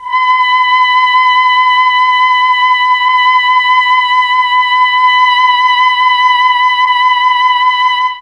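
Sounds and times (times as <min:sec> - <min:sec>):
mellotron female choir voice: 0:00.0 - 0:08.1.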